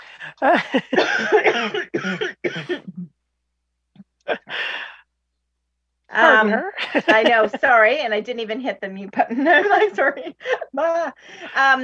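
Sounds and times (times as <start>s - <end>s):
speech: 0.2s - 3.1s, 6.2s - 11.8s
laughter: 0.4s - 1.7s, 6.3s - 8.0s, 9.3s - 11.8s
person coughing: 0.8s - 3.1s.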